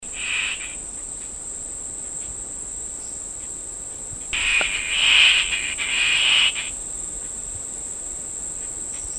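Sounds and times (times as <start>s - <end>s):
fluffy-backed tit-babbler churring at Danum in Borneo: 0.0s - 0.8s, 4.4s - 6.8s
continuous shrill insect hum at Danum in Borneo: 0.0s - 9.1s.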